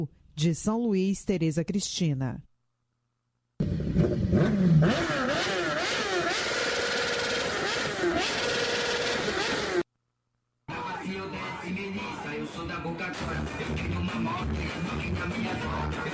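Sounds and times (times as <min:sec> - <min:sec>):
speech: 0:00.0 - 0:02.5, 0:11.6 - 0:16.1
motorcycle exhaust revving in throttle blips: 0:03.6 - 0:09.8.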